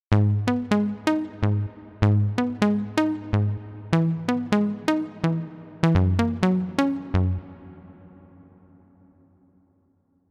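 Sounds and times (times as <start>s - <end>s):
hybrid standard deep house music: 0.1s - 8.1s.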